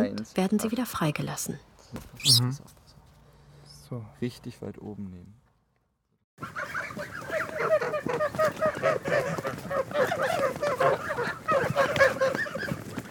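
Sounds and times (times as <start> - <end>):
speech: 0.1 - 2.8, 3.9 - 5.4, 6.4 - 10.8
flock of geese honking as they are herded in from the pasture: 6.4 - 13.1.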